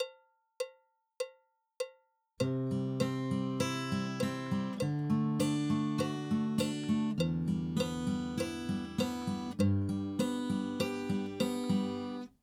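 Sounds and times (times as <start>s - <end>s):
guitar chord arpeggio: 2.5s - 12.3s.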